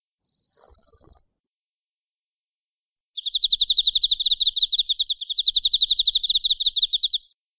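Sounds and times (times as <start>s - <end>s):
insect call rapid pulsed high trill: 0.2s - 1.3s, 3.2s - 7.2s
insect call short high buzz: 0.2s - 1.3s.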